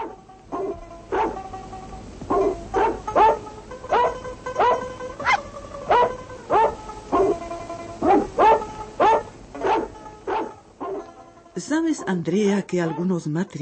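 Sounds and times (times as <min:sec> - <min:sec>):
dog barking: 0:00.0 - 0:01.4, 0:02.3 - 0:07.4, 0:08.0 - 0:11.1
speech: 0:11.7 - 0:13.6.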